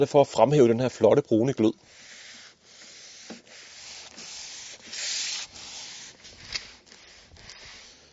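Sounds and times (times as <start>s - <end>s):
speech: 0.0s - 2.1s
cloth rubbing oil into a wooden tabletop: 1.9s - 8.1s.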